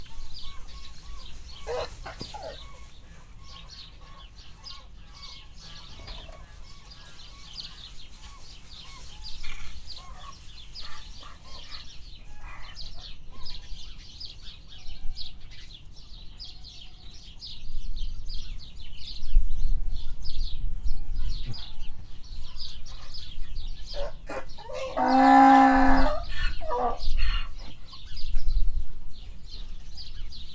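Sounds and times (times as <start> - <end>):
windy weather in Hortobágy National Park: 0.0 - 30.5
donkey whimpering in Hortobágy National Park: 1.6 - 2.8, 24.0 - 27.7.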